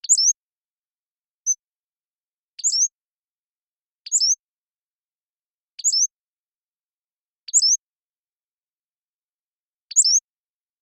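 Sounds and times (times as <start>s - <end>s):
Pacific-slope flycatcher singing high sharp slurred phrases: 0.0s - 0.4s, 2.6s - 3.0s, 4.1s - 4.4s, 5.8s - 6.2s, 7.5s - 7.9s, 9.9s - 10.3s.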